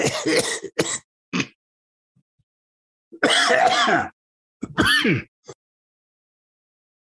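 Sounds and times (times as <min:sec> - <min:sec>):
person imitating a lingering cough: 0:00.0 - 0:01.6, 0:03.2 - 0:05.3
throaty throat clearing: 0:00.0 - 0:01.6, 0:03.2 - 0:05.6.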